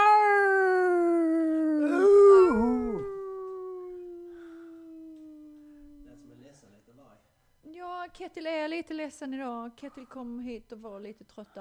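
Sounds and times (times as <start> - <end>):
dog howling: 0.0 - 6.2
speech: 8.3 - 11.5.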